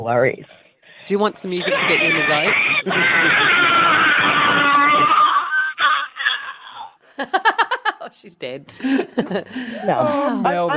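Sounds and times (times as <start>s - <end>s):
speech: 0.0s - 5.1s, 7.2s - 10.7s
woman's long strained primal scream over a phone line: 1.4s - 6.9s
woman's breathy laughter: 1.6s - 7.9s.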